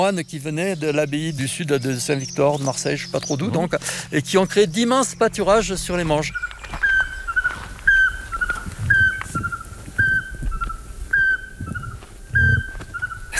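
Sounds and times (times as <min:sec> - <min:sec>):
speech: 0:00.0 - 0:06.8
Eurasian pygmy owl whistling in the Monges massif, southern Alps: 0:05.4 - 0:13.3.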